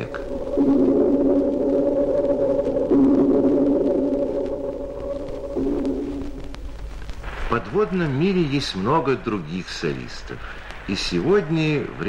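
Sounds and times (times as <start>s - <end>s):
slowed-down dolphin echolocation echo as deep organ-like underwater drone: 0.0s - 6.2s
speech: 7.7s - 12.0s.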